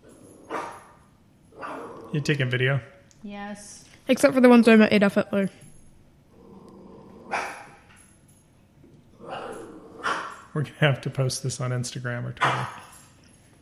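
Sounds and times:
low steady hum: 0.0 - 13.5
female dog growling at its reflection: 1.6 - 2.2, 6.3 - 7.8, 9.1 - 10.5
speech: 2.1 - 5.7, 10.6 - 12.9
dog sharp bark-like snap: 7.4 - 7.8, 10.0 - 10.4.

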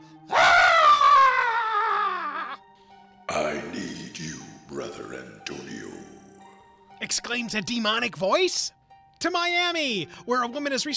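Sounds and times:
man tied to a burning bed screaming in agony: 0.3 - 2.6
speech: 7.0 - 10.9.

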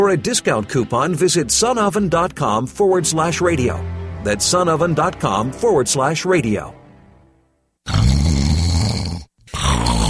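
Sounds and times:
speech: 0.0 - 6.8
loud rasping snores: 7.8 - 10.0.

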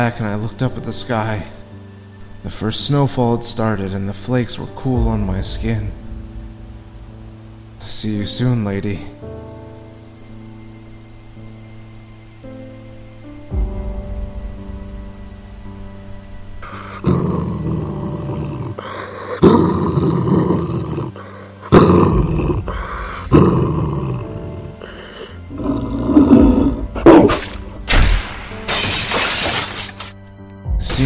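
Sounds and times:
speech: 0.0 - 1.6, 2.4 - 6.0, 7.8 - 9.3
hellhound and bear growling and roaring while fighting: 16.6 - 27.8
sharp crashing impacts: 27.3 - 30.2.

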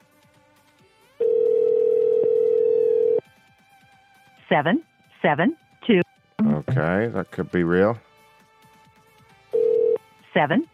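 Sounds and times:
steady telephone dial tone: 1.2 - 3.2, 9.5 - 10.0
speech: 4.5 - 6.0, 6.8 - 8.1, 10.4 - 10.7
short bursts of a voice: 6.4 - 7.1.

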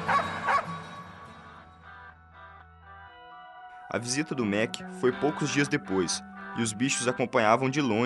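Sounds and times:
dog barking: 0.0 - 0.8
speech: 3.9 - 8.0.

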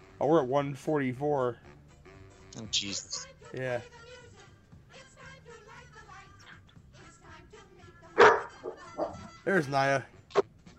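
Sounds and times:
speech: 0.2 - 1.8, 2.6 - 4.0, 9.5 - 10.2
female dog barking: 8.2 - 9.4.

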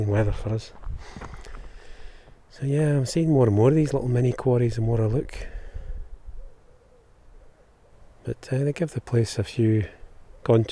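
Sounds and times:
speech: 0.0 - 1.4, 2.5 - 5.5, 8.2 - 10.6
low outdoor rumble of wind: 0.0 - 10.6
various birds hooting in woodland: 6.0 - 8.3, 10.0 - 10.6.

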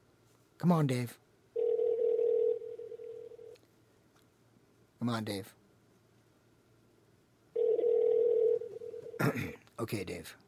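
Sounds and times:
speech: 0.6 - 1.2, 5.0 - 5.6, 9.2 - 10.4
telephone ringback tone while calling: 1.6 - 3.5, 7.6 - 9.2.

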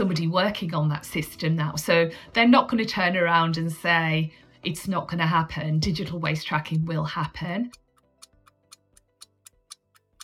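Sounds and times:
speech: 0.2 - 7.8
clock ticking: 7.2 - 10.2.

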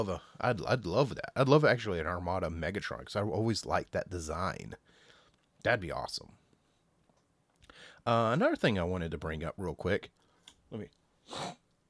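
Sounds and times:
speech: 0.0 - 5.0, 5.6 - 6.4, 7.8 - 11.6
sharp breathy sniff from seasonal allergies: 11.2 - 11.6
brief throaty nasal snort: 11.3 - 11.6.

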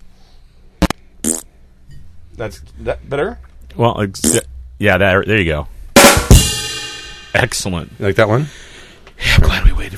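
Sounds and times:
buzzy fart sound effects played on a soundboard: 0.8 - 1.5, 4.2 - 4.5
speech: 2.4 - 5.8, 7.4 - 9.8.

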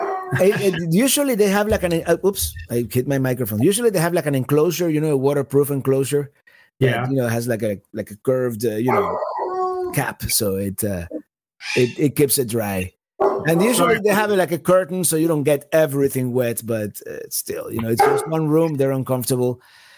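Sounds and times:
dog barking and yelping: 0.0 - 0.6, 8.9 - 9.9, 13.2 - 14.0, 17.9 - 18.4
laughter: 0.3 - 1.2
speech: 0.3 - 9.3, 9.9 - 19.9.

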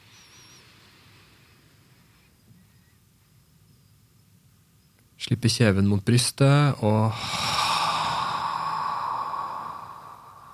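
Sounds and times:
speech: 5.2 - 7.4
slow exhale through an open mouth: 7.1 - 10.5.

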